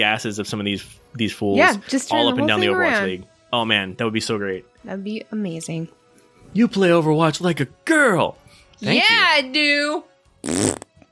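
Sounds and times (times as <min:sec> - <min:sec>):
speech: 0:00.0 - 0:10.8
fart noise: 0:10.4 - 0:11.0.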